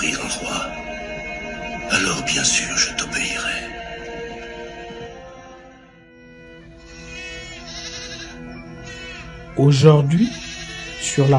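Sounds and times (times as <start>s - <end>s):
speech: 2.0s - 3.7s, 9.6s - 10.5s, 11.1s - 11.3s
sheep bleating: 6.8s - 11.3s.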